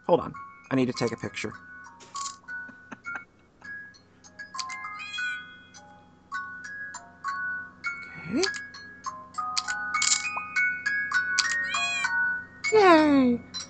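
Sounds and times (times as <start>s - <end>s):
steady low hum of phone game music: 0.0s - 13.6s
speech: 0.1s - 1.7s, 8.3s - 8.5s
bright electronic chimes and tinkling jingles from a phone game: 2.0s - 13.6s
short cartoonish cat meow from a phone game: 11.6s - 12.2s.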